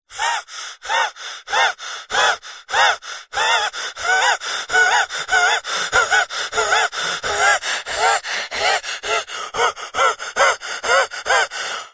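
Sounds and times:
human breathing fast laboured wheezing: 0.1 - 11.9.

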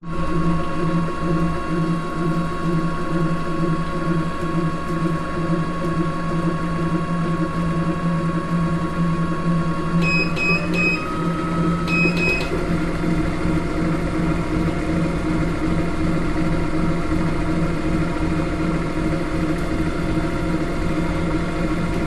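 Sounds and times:
sport gym vibration machine running: 0.0 - 22.0.

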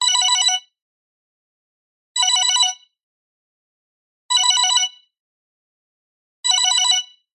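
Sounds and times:
simple multimedia smartphone ringtone: 0.0 - 0.8, 2.2 - 3.0, 4.3 - 5.1, 6.5 - 7.3.

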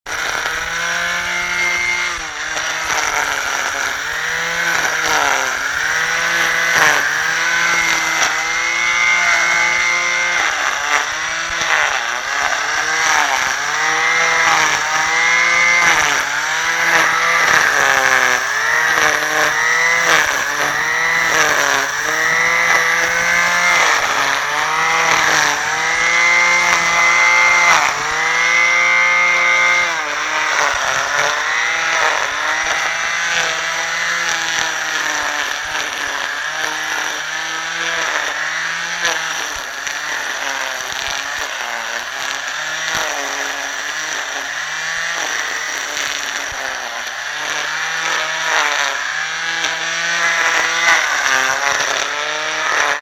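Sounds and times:
household garden grass trimmer operating: 0.0 - 53.0.

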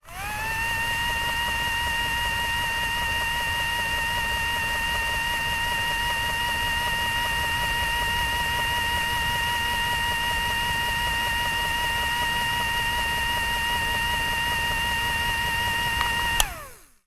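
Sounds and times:
small industrial motor machine plastic whirr switching off: 0.0 - 17.0.

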